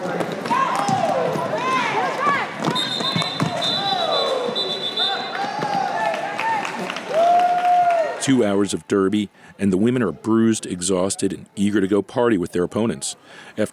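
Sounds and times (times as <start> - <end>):
crowd cheering and shouting at a women's roller derby bout: 0.0 - 8.4
long high whistle: 2.8 - 5.3
speech: 8.2 - 13.7.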